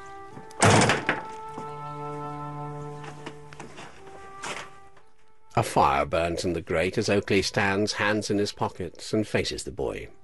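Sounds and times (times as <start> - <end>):
door shutting with a dull heavy thud: 0.6 - 1.3
speech: 5.6 - 10.2.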